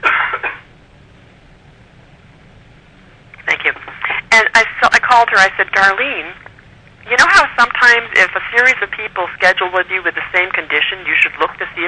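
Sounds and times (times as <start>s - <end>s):
harsh coughing fit: 0.0s - 0.7s
speech: 4.3s - 6.4s, 7.1s - 11.8s.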